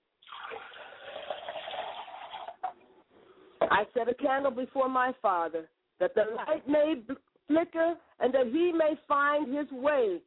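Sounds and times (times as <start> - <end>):
liquid pouring as a libation: 0.2 - 2.8
speech: 3.7 - 10.2.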